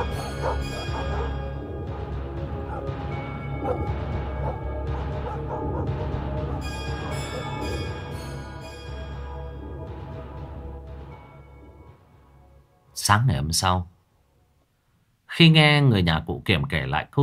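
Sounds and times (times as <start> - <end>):
several dogs barking in a village at night: 0.0 - 1.7, 2.5 - 8.0
speech: 13.1 - 13.9, 15.4 - 17.2.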